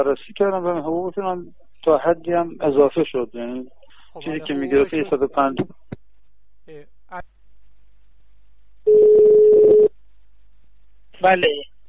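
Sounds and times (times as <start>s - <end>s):
speech: 0.0s - 5.8s, 6.7s - 7.3s, 11.2s - 11.7s
noisy phone line: 8.9s - 9.9s
steady telephone busy tone over a noisy phone line: 8.9s - 9.9s.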